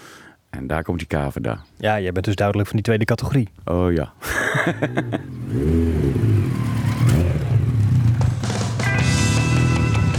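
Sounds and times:
speech: 0.6s - 7.4s
laughter: 4.2s - 5.4s
old 1986 racing motorcycle rebuilt into a rusty custom bike revving: 4.7s - 10.1s.

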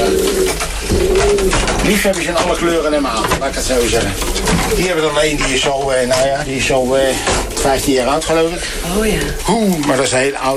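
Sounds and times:
pigeons cooing: 0.0s - 10.5s
rustling and shuffling: 0.0s - 10.5s
speech: 2.0s - 10.5s.

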